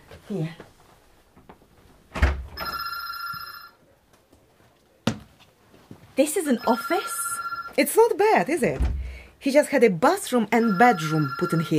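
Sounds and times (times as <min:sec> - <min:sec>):
speech: 0:00.3 - 0:00.7, 0:06.2 - 0:07.2, 0:07.8 - 0:11.7
telephone bell ringing: 0:02.6 - 0:03.8, 0:06.6 - 0:07.9, 0:10.6 - 0:11.7.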